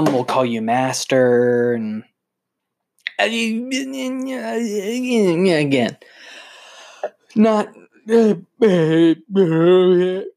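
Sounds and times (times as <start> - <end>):
speech: 0.0 - 2.1, 3.2 - 6.3, 7.3 - 10.3
person yawning: 8.1 - 10.3.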